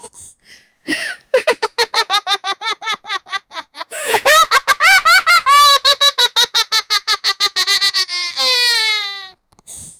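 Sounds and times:
boy laughing: 1.4s - 9.1s.

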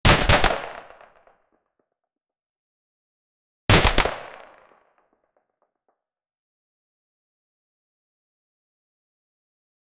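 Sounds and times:
single SP5A3 9mm gunshot: 0.0s - 1.2s, 3.7s - 4.7s.

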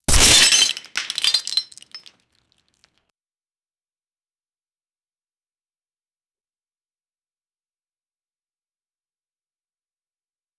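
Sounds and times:
glass cracking impact: 0.1s - 2.1s.

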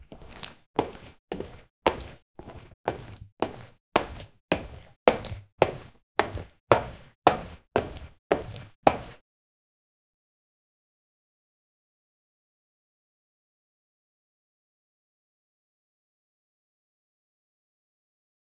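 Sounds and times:
male leather dress shoes: 0.0s - 9.2s.

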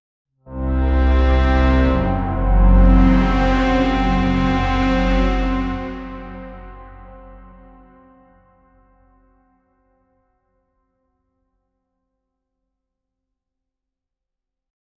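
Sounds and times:
epic cinematic single note: 0.5s - 8.7s.

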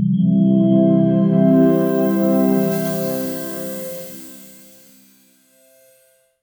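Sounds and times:
cinematic startup tone: 0.2s - 6.1s.

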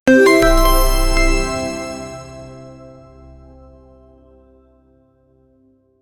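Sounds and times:
gaming unlock clipping sound: 0.1s - 2.7s.

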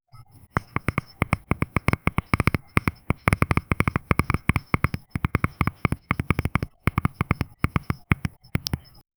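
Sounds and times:
ASMR tapping: 0.4s - 9.0s.

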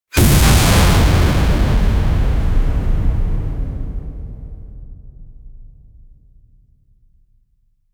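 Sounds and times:
multiverse scale explosion: 0.1s - 5.9s.

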